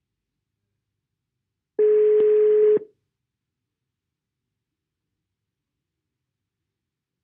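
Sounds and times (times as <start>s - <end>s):
telephone ringing tone while placing a call: 1.8s - 2.8s.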